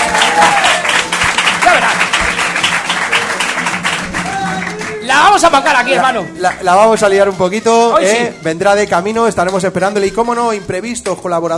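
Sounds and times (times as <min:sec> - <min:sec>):
audience applause welcoming a guest: 0:00.0 - 0:05.9
speech: 0:05.4 - 0:11.5.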